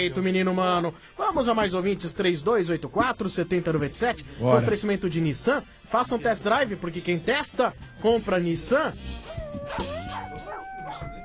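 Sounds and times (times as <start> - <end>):
speech: 0.0 - 10.0
husky dog howling: 9.2 - 11.2.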